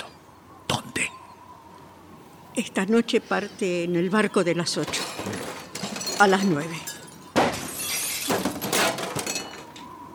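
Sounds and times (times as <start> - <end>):
speech: 2.6 - 5.6, 6.2 - 6.9
glass vase shattering: 4.8 - 9.9
table being knocked over: 4.8 - 9.9.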